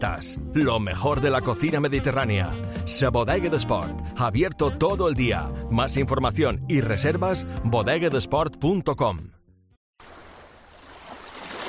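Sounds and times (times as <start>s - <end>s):
speech: 0.0s - 9.4s
sea waves washing in: 10.0s - 11.6s.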